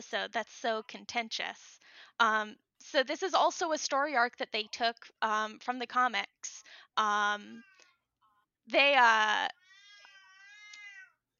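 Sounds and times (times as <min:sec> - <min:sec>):
speech: 0:00.0 - 0:07.7, 0:08.7 - 0:09.6
female pet cat meowing: 0:09.7 - 0:11.1.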